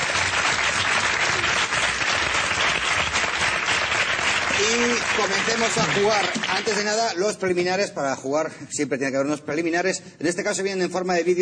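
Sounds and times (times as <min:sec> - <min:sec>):
large audience applauding on a comedy quiz show: 0:00.0 - 0:07.1
speech: 0:05.1 - 0:11.3.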